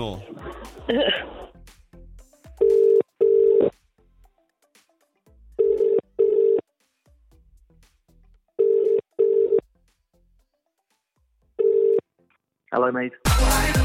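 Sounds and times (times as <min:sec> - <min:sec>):
speech: 0:00.0 - 0:01.5, 0:12.8 - 0:13.7
mobile phone call double-burst ringing tone: 0:02.6 - 0:03.8, 0:05.6 - 0:06.6, 0:08.6 - 0:09.6, 0:11.6 - 0:12.0.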